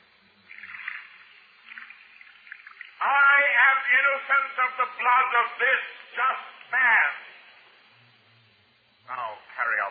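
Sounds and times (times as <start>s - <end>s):
water poured from a pitcher over hands: 0.5s - 3.0s
speech: 3.9s - 7.3s, 9.1s - 9.8s.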